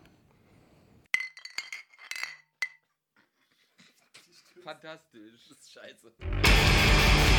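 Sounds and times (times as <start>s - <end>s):
glass beer bottles toppling and clinking together: 1.2s - 2.9s
speech: 4.7s - 7.2s.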